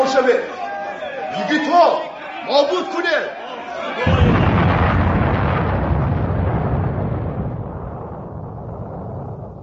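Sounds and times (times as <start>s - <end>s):
speech: 0.1s - 0.6s, 1.4s - 4.3s
deep explosion at a cave entrance: 4.1s - 9.6s.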